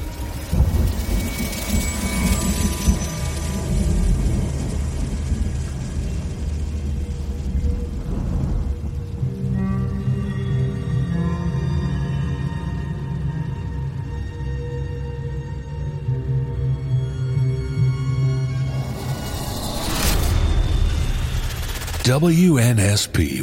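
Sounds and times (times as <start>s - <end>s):
steady rain pouring down: 0.0s - 14.2s
faint tonal hum: 0.0s - 22.1s
speech: 22.1s - 23.4s.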